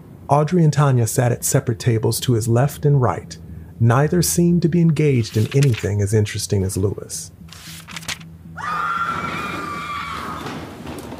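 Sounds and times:
speech: 0.3 - 8.0
woman screaming in a school library: 8.6 - 10.5.

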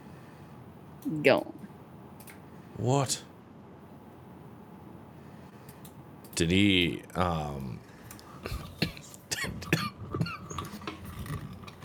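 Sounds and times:
speech: 1.0 - 1.6, 2.8 - 3.3, 6.4 - 8.7
throaty vocal noises: 7.1 - 11.8
person coughing: 8.4 - 10.9.

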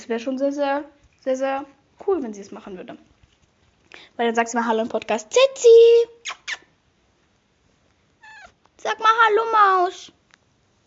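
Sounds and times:
speech: 0.0 - 3.1, 3.9 - 6.4, 8.8 - 10.2
cat giving chirping mews and a falling meow: 8.2 - 8.6.

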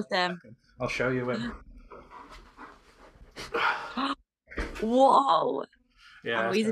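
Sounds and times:
speech: 0.0 - 1.7, 4.8 - 6.6
black German Shepherd puppy panting: 1.4 - 3.3.

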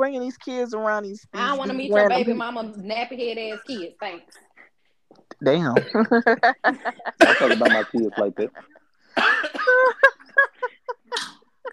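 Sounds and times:
speech: 0.0 - 4.5, 5.4 - 10.0
person clearing throat: 5.6 - 6.2, 7.2 - 8.5, 9.2 - 9.8, 11.1 - 11.4
person coughing: 5.6 - 6.2, 7.1 - 8.5, 9.2 - 9.9
laughter: 5.7 - 11.7.

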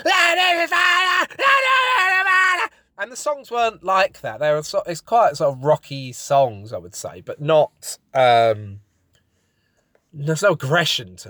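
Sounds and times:
speech: 0.0 - 1.6, 3.0 - 8.8, 10.1 - 11.2
person imitating angry punk-style shouting: 0.0 - 2.7.

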